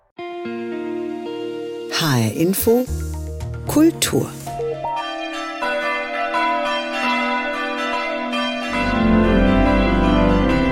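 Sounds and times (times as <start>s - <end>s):
speech: 0.4s - 0.8s, 2.0s - 3.0s, 3.7s - 4.4s
church bells pealing before a church's final service: 4.6s - 10.7s.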